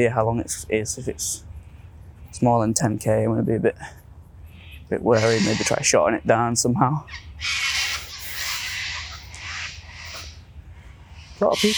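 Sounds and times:
speech: 0.0 - 1.5, 2.3 - 4.0, 4.9 - 7.8, 11.4 - 11.7
steady low rumble of noise: 0.0 - 11.7
agitated birds squawking loudly and harshly: 4.5 - 11.7.

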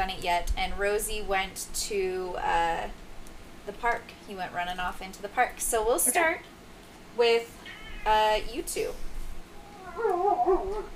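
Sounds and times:
speech: 0.0 - 3.0, 3.7 - 6.5, 7.2 - 9.1, 9.9 - 10.9
dog whimpering in a high wavering whine: 9.6 - 10.9.

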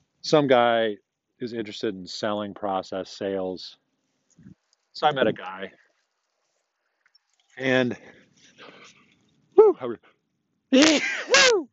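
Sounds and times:
speech: 0.2 - 3.8, 4.4 - 5.8, 7.6 - 9.0, 9.6 - 10.1, 10.7 - 11.7
person sneezing while out walking the dog: 10.8 - 11.6.

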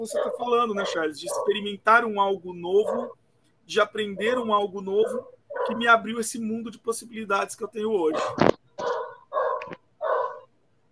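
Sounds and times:
several dogs barking: 0.0 - 1.7, 2.7 - 3.2, 4.0 - 6.0, 8.0 - 10.5
speech: 0.0 - 8.6.

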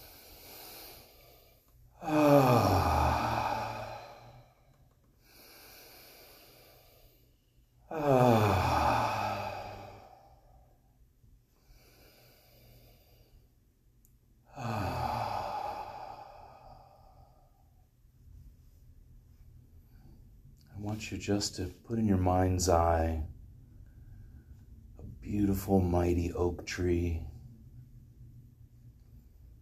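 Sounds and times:
deep sweeping breaths in and out: 0.0 - 13.8, 14.4 - 21.8, 22.9 - 25.1
speech: 21.0 - 23.3, 25.3 - 27.3.

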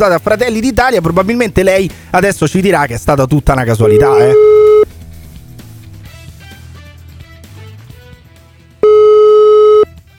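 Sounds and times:
speech: 0.0 - 4.6
quiet music: 0.0 - 10.1
telephone ringing tone from an outgoing call placed by a radio show: 3.8 - 4.9, 8.8 - 9.9.

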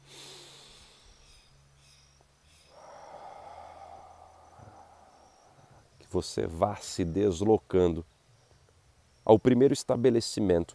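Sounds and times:
slow deep breath during guided meditation: 0.0 - 6.0
speech: 6.1 - 8.1, 9.3 - 10.7.

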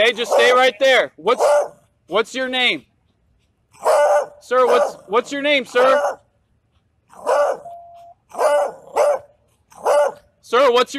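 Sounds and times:
dog barking harshly: 0.0 - 1.9, 3.8 - 6.3, 7.1 - 10.3
speech: 0.0 - 2.9, 3.8 - 6.2, 10.5 - 10.9.

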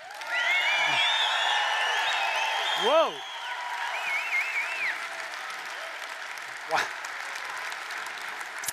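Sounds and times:
whoops from a church audience: 0.0 - 5.9
large indoor church audience applauding: 0.0 - 8.7
shrill whistles from a church audience: 0.3 - 5.0
speech: 2.8 - 3.3, 6.7 - 6.9.

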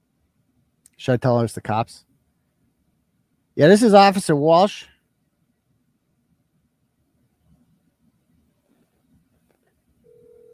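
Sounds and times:
speech: 1.0 - 2.1, 3.6 - 4.9
steady sustained telephone ringing tone: 10.0 - 10.5
phone dialing with short beeps: 10.1 - 10.5.

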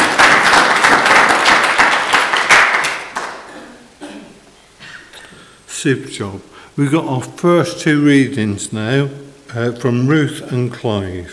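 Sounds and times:
audience applauding: 0.0 - 3.5
speech: 5.8 - 11.3.

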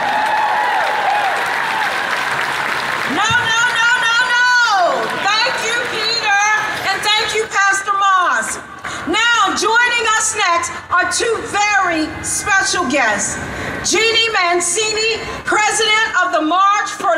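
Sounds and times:
crowd applause and hand clapping: 0.0 - 9.0
speech: 10.2 - 17.1.

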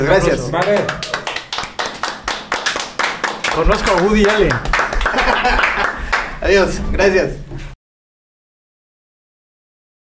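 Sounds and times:
speech: 0.0 - 1.1, 3.6 - 7.4
hands clapping: 0.1 - 7.8
laughter: 3.4 - 7.2.

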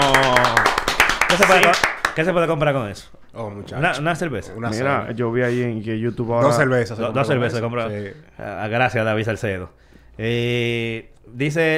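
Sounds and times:
voice calling or cheering: 0.0 - 1.8
rapid crisp hand claps: 0.0 - 2.5
speech: 1.3 - 11.7.

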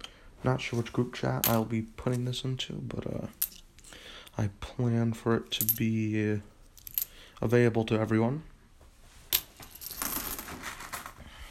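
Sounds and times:
speech: 0.4 - 3.6, 4.4 - 6.5, 7.4 - 8.5
dirty worn metal coins clinking as sorted by hand: 3.3 - 3.6, 6.8 - 7.2, 9.3 - 11.1.

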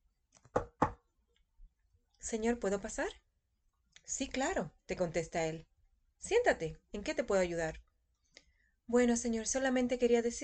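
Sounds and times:
firm knocks on an office door: 0.6 - 1.0
speech: 2.2 - 3.2, 4.1 - 7.8, 8.9 - 10.4.

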